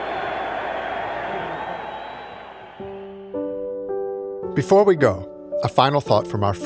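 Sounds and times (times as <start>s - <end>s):
large crowd cheering: 0.0s - 3.6s
speech: 4.6s - 6.6s.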